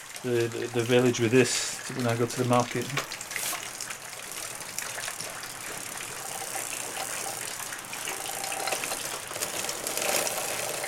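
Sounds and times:
speech: 0.2s - 3.2s
French Motobécane bike wheel whirring: 3.4s - 10.8s
faint mechanical chatter of Motobécane bike: 4.2s - 10.8s.

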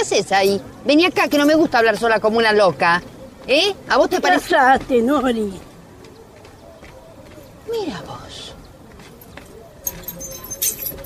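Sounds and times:
speech: 0.0s - 5.7s, 7.7s - 8.2s
faint murmuring: 0.0s - 11.0s
keys jangling as they are tossed: 9.8s - 11.0s.

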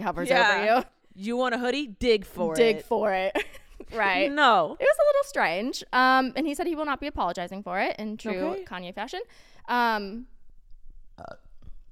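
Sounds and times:
speech: 0.0s - 10.3s, 11.2s - 11.4s
loud voiced burp: 11.2s - 11.8s.

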